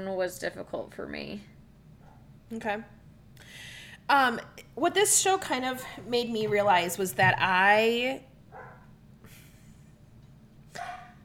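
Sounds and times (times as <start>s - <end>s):
speech: 0.0s - 1.6s, 2.5s - 8.3s
steady low hum: 0.0s - 11.2s
dogs barking at a critter in the backyard: 8.5s - 8.9s, 10.8s - 11.2s.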